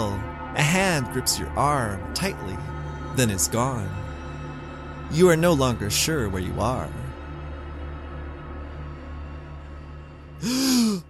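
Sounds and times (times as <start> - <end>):
speech: 0.0 - 4.0, 5.1 - 7.0, 10.4 - 11.0
person gasping for air: 10.4 - 11.0.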